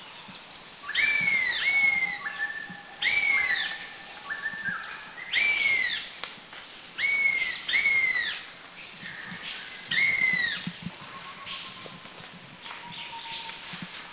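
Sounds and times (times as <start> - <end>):
faint forest background in Krung Ching, Thailand: 0.0 - 14.1
black-and-yellow broadbill giving whistled notes: 0.9 - 6.0, 7.0 - 8.3.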